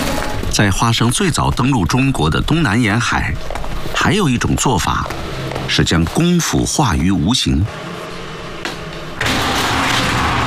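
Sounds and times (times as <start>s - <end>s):
speech: 0.6s - 8.0s
breakfast shop door rattling as it rolls open: 9.2s - 10.4s.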